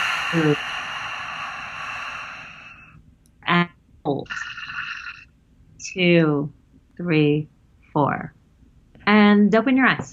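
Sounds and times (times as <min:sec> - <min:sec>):
person exhaling audibly after a held breath in a guided breathing exercise: 0:00.0 - 0:02.9
speech: 0:00.3 - 0:00.8, 0:06.0 - 0:08.4, 0:09.3 - 0:10.1.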